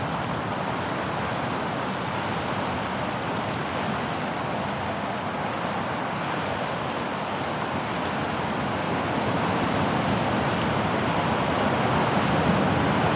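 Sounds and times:
ocean surf roaring on a beach: 0.0s - 13.1s.

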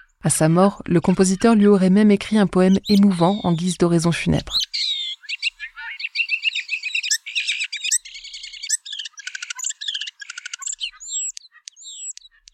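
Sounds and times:
speech: 0.2s - 4.9s
bird singing: 0.9s - 12.5s.

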